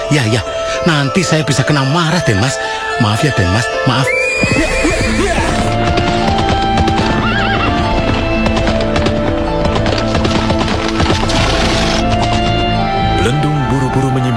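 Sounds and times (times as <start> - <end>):
speech: 0.1 - 5.3, 13.3 - 14.3
horse hooves clopping as a horse is put into its stable: 4.3 - 13.2.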